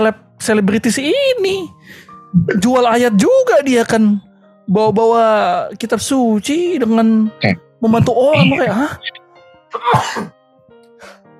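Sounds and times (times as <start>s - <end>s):
speech: 0.0s - 10.4s
person sneezing: 9.8s - 10.3s.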